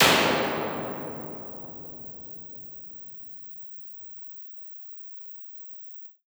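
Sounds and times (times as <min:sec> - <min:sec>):
bright EMT 140 plate reverb impulse response: 0:00.0 - 0:02.6.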